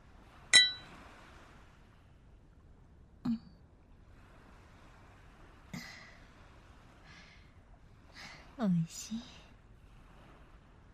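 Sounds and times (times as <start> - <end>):
glasses clinking in a toast: 0.6 - 0.9
speech: 8.6 - 9.4.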